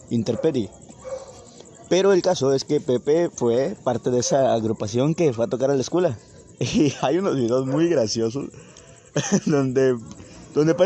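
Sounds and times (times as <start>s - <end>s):
steady hiss of outdoor noise: 0.0s - 10.8s
speech: 0.1s - 0.8s, 1.9s - 10.8s
dog barking outdoors: 0.3s - 2.1s, 4.2s - 4.6s, 7.5s - 8.1s, 10.6s - 10.8s
laughter: 6.6s - 7.4s, 9.1s - 10.1s.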